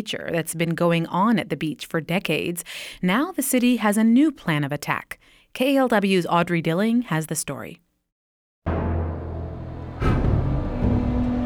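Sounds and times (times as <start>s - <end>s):
speech: 0.0s - 7.8s
dump truck or loader diesel engine droning: 8.7s - 11.4s.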